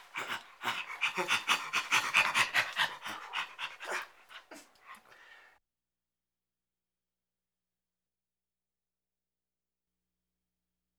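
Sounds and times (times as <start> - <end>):
chimpanzee panting grunts: 0.0 - 5.4.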